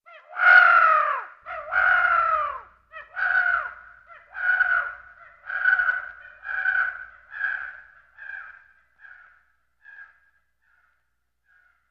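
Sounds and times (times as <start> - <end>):
crow cawing: 0.1 - 11.8.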